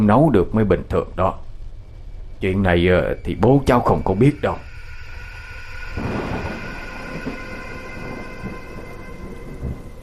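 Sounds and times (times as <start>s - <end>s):
speech: 0.0s - 1.4s, 2.4s - 4.7s
thunder rumbling: 2.1s - 10.0s
heavy rain: 5.5s - 10.0s.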